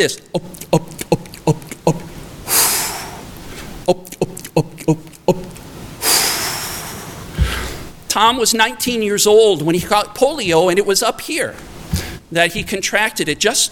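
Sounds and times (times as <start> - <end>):
speech: 0.0 - 0.9, 3.9 - 5.1, 8.2 - 11.7, 12.3 - 13.7
paralyzed man gulping air by frog breathing: 0.3 - 8.0
man's long hissing breath: 2.4 - 3.7, 6.0 - 8.0.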